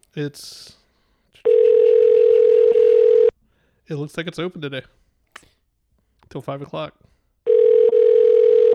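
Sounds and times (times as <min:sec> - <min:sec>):
speech: 0:00.2 - 0:00.8, 0:03.9 - 0:05.0, 0:06.3 - 0:07.1
telephone ringback tone on an outgoing call to a library: 0:01.5 - 0:03.3, 0:07.5 - 0:08.7.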